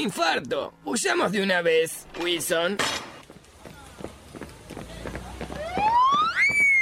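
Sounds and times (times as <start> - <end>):
speech: 0.0 - 3.1
quick rhythmic running footsteps: 3.2 - 6.7
police patrol car siren approaching: 5.5 - 6.7.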